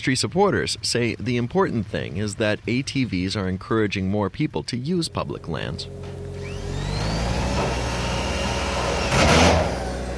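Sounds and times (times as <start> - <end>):
speech: 0.0 - 6.2
generator engine drone in the shadeless desert: 4.6 - 10.1
screws driven into a sun shelter: 6.0 - 10.1.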